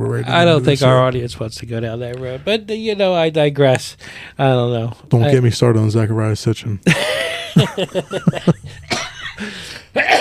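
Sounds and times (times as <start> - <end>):
speech: 0.1 - 9.6
person chuckling breathily: 6.9 - 10.1
person coughing harshly: 8.8 - 10.1.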